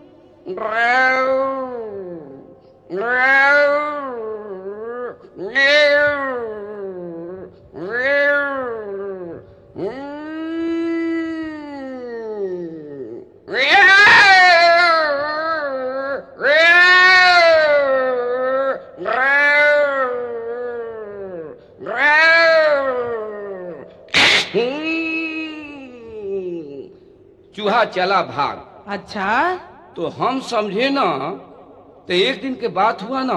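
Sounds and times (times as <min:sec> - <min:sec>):
voice imitating a cat pouncing on a mouse with yowling meows: 0:00.0 - 0:27.0
speech: 0:00.5 - 0:01.2, 0:27.9 - 0:31.5, 0:32.1 - 0:33.3.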